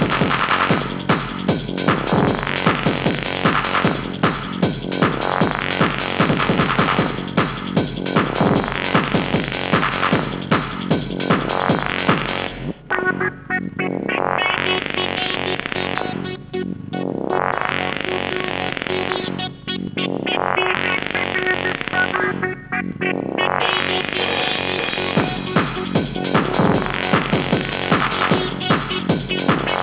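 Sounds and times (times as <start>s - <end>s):
trance synth arpeggiators: 0.0s - 29.8s.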